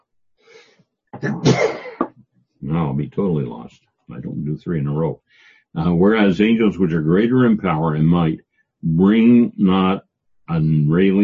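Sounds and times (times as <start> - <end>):
soft breathy inhale: 0.4 - 0.9, 5.2 - 5.8
speech: 1.2 - 1.7, 2.8 - 11.2
loud sneeze: 1.2 - 2.1.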